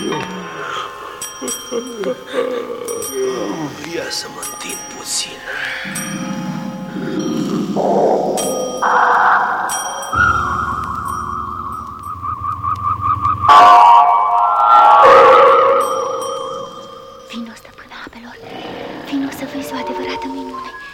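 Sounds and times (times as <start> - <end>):
small bell ringing with shimmering wavering tones: 0.0 - 7.8, 8.4 - 12.2, 13.6 - 17.7
speech: 1.4 - 9.2.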